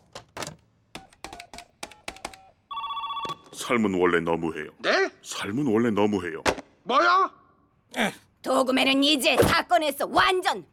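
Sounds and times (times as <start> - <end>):
trilling telephone ringing: 2.3 - 3.7
telephone key presses with short beeps: 2.4 - 3.5
speech: 3.6 - 10.7.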